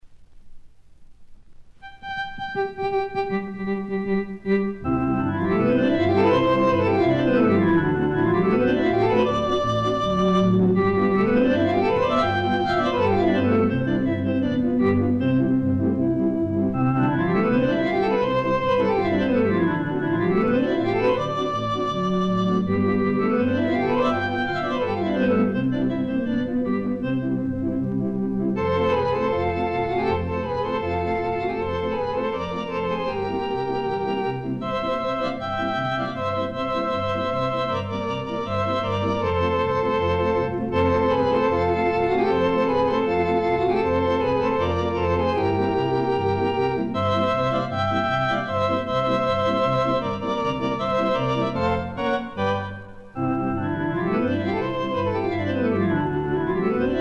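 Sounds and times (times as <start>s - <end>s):
polka played on Hammond organ: 1.8s - 57.0s.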